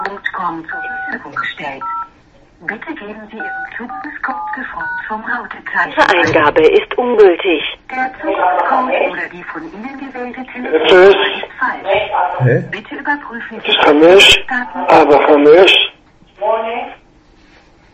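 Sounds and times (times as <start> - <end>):
people talking on a conference call: 0.0 - 1.9, 2.6 - 17.0
telephone keypad DTMF dialing tones: 0.7 - 2.1, 3.4 - 5.0.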